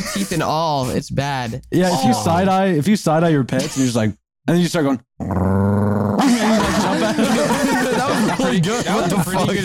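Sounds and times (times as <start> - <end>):
speech: 0.2 - 5.6, 8.5 - 9.6
person imitating an angry dog with a gravelly growl: 5.2 - 6.5
laughter: 6.2 - 9.6.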